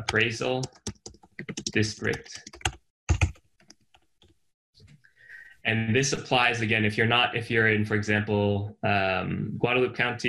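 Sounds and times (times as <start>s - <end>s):
speech: 0.0s - 0.9s, 1.7s - 2.5s, 5.7s - 10.2s
typing on a computer keyboard: 0.0s - 4.4s.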